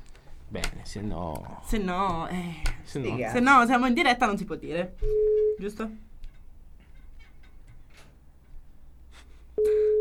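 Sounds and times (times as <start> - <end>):
speech: 0.5 - 6.1
loud steady telephone line tone: 5.0 - 5.9, 9.6 - 10.0.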